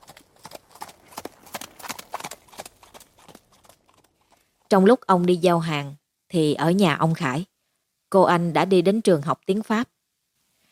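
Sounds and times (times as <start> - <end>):
horse hooves clip-clopping as a horse pulls a cart: 0.0 - 4.7
speech: 4.7 - 7.5, 8.1 - 10.0.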